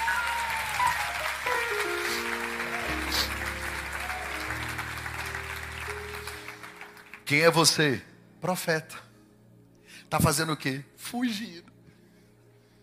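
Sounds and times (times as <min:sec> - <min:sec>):
large audience applauding: 0:00.0 - 0:07.6
soft sustained keyboard chords: 0:00.0 - 0:08.5
speech: 0:07.3 - 0:09.1, 0:10.1 - 0:11.7.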